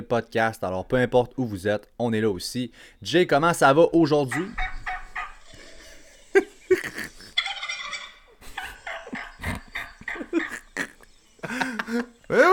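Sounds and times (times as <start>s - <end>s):
speech: 0.1s - 4.6s, 11.9s - 12.5s
turkey gobbling: 3.7s - 12.5s
laughter: 3.9s - 12.5s.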